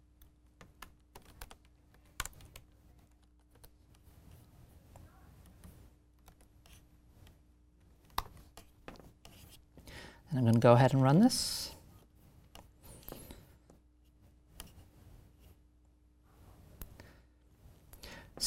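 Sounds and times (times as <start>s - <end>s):
faint steady hum: 0.0s - 18.4s
typing on a computer keyboard while entering code: 0.2s - 3.8s
speech: 10.4s - 11.7s.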